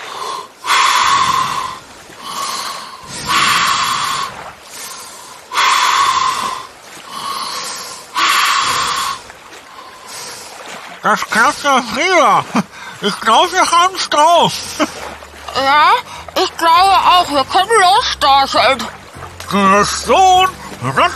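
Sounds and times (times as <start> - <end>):
slow deep breathing in and out through the mouth via a snorkel: 0.0 - 10.8
speech: 11.0 - 15.0, 15.6 - 21.1.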